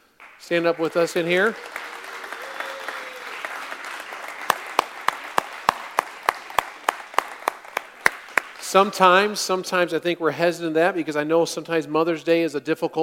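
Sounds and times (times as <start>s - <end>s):
crowd clapping rhythmically in unison: 0.0s - 9.2s
indoor crowd applauding: 0.1s - 9.2s
speech: 0.5s - 1.8s, 8.7s - 13.0s.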